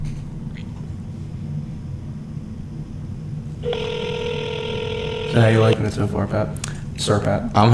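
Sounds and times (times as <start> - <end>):
low steady rumble: 0.0 - 7.7
outgoing call ringback tone: 3.6 - 5.8
speech: 5.4 - 7.7.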